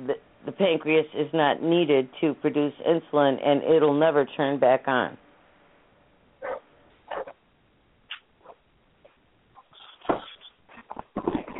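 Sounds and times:
speech: 0:00.1 - 0:05.2
dog barking and whimpering: 0:06.4 - 0:07.4, 0:08.4 - 0:08.6.

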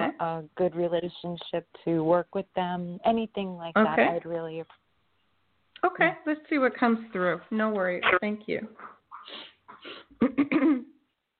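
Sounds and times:
speech: 0:00.2 - 0:04.8, 0:05.8 - 0:10.9
person sniffling from allergies: 0:09.1 - 0:10.2
congested throaty coughing: 0:09.1 - 0:11.0.

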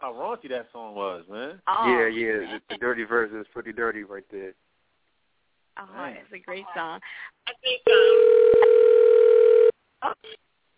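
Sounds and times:
speech: 0:00.0 - 0:04.7, 0:05.8 - 0:09.0, 0:10.0 - 0:10.7
telephone dial tone on a direct line: 0:07.9 - 0:09.7.

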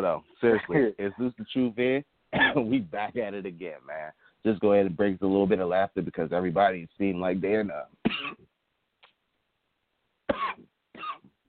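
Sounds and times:
speech: 0:00.0 - 0:08.4
person coughing in a staged coughing fit: 0:02.3 - 0:02.7, 0:08.0 - 0:08.5, 0:10.3 - 0:11.3.

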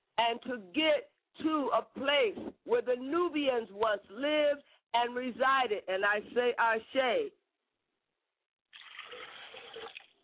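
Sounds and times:
speech: 0:00.2 - 0:07.4
liquid poured out as a libation, pouring and splashing: 0:08.7 - 0:10.2.

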